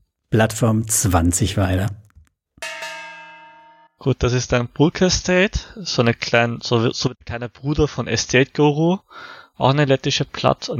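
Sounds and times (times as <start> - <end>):
speech: 0.3 - 2.0, 4.0 - 10.7
gong struck: 2.6 - 3.9.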